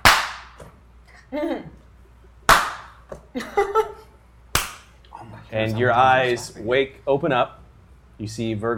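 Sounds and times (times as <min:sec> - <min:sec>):
sharp loud slaps: 0:00.0 - 0:00.7, 0:02.5 - 0:03.2, 0:04.5 - 0:05.0
speech: 0:01.3 - 0:01.8, 0:03.4 - 0:03.9, 0:05.5 - 0:07.6, 0:08.2 - 0:08.7.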